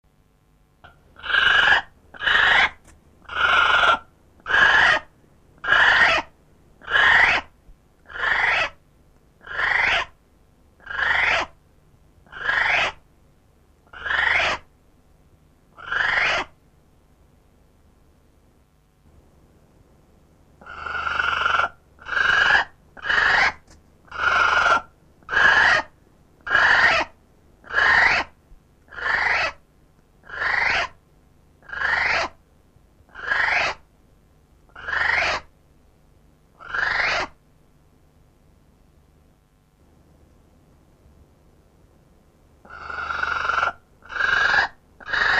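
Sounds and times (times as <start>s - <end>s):
female North Island brown kiwi: 0.8s - 8.8s, 9.4s - 10.2s, 10.8s - 11.6s, 12.3s - 13.0s, 13.9s - 14.7s, 15.8s - 16.6s, 20.6s - 29.6s, 30.2s - 31.0s, 31.6s - 32.4s, 33.1s - 33.8s, 34.7s - 35.5s, 36.6s - 37.4s, 42.7s - 45.3s.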